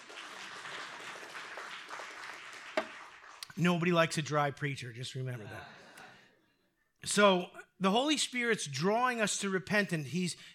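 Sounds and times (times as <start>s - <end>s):
crowd clapping: 0.0s - 3.9s
single sharp clap: 2.5s - 3.5s
speech: 3.6s - 5.8s, 7.0s - 10.5s.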